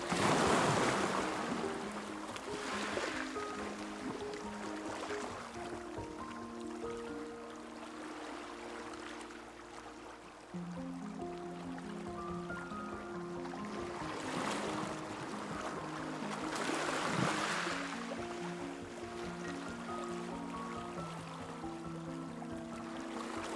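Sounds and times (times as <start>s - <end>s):
waves crashing against rocks: 0.0s - 7.0s, 13.7s - 21.8s
soft slow music with held low chords: 0.0s - 23.5s.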